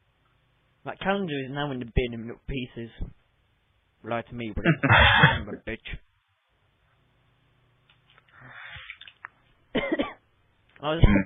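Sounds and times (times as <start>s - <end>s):
speech: 0.8s - 3.2s, 4.0s - 6.1s, 10.8s - 11.2s
harsh coughing: 4.7s - 5.6s, 9.7s - 10.2s, 11.0s - 11.2s.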